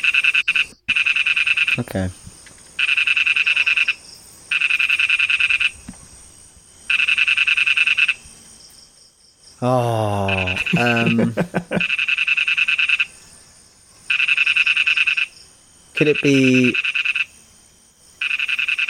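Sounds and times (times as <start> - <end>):
lesser toad Ingerophrynus parvus calling in buzzy trills: 0.0 - 1.8, 2.8 - 5.9, 6.9 - 8.2, 10.2 - 13.2, 14.1 - 15.4, 16.0 - 17.4, 18.2 - 18.8
speech: 1.8 - 2.3, 9.6 - 11.9, 16.0 - 16.9
laughter: 9.6 - 11.9.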